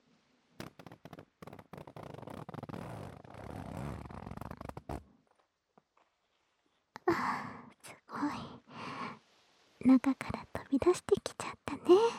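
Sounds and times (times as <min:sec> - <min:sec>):
zipper being pulled down: 0:00.6 - 0:05.1
speech: 0:09.8 - 0:12.1.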